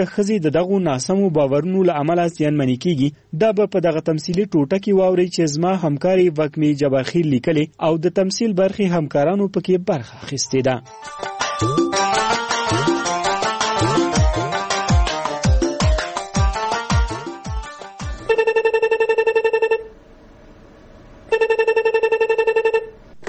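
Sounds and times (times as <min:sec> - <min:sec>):
speech: 0:00.0 - 0:12.2
music: 0:10.5 - 0:18.3
telephone ringtone in a dramatized radio scene: 0:10.8 - 0:15.0, 0:17.1 - 0:19.8, 0:21.3 - 0:22.8.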